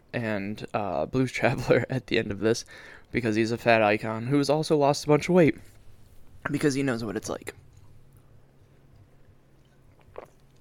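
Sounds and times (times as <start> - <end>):
low steady hum: 0.0 - 10.6
speech: 0.1 - 5.7, 6.4 - 7.6
person drinking water: 7.7 - 10.6
faint wet mouth sounds: 9.6 - 10.6
gulp: 9.6 - 10.6.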